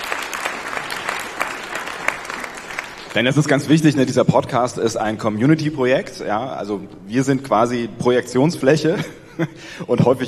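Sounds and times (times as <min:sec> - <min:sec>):
sharper claps: 0:00.0 - 0:03.6
applause from an audience: 0:00.0 - 0:03.8
speech: 0:03.1 - 0:10.2.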